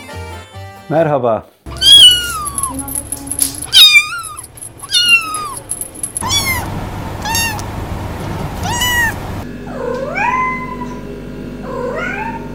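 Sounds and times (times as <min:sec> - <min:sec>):
speech: 0:00.9 - 0:01.6
cats meowing: 0:01.7 - 0:07.7, 0:08.4 - 0:11.0, 0:11.6 - 0:12.5.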